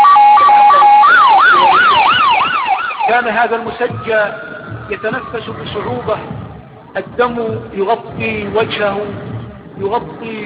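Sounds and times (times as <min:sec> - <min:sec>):
ambulance siren wailing as the ambulance drives off: 0:00.0 - 0:07.7
speech: 0:03.2 - 0:10.4.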